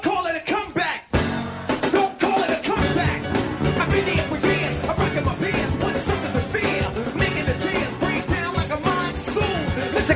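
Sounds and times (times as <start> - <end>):
live band playing a loud hip hop groove: 1.1 - 10.1
punchy drums: 1.1 - 10.1
deep bass: 2.8 - 10.1.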